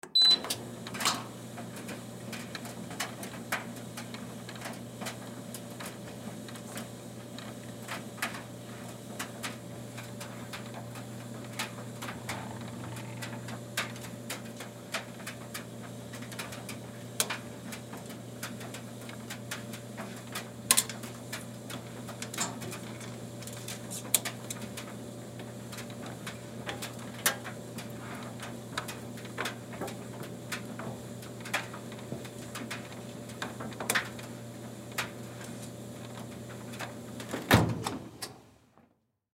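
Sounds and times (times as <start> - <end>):
clothes dryer turn on beep: 0.0 - 0.5
household clothes dryer running: 0.1 - 38.3.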